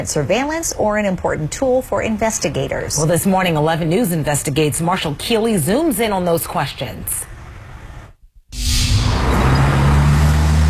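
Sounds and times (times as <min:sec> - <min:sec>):
speech: 0:00.0 - 0:07.3
cars rushing past at a busy city intersection: 0:08.6 - 0:10.6
steady engine rumble at a busy city intersection: 0:08.6 - 0:10.6.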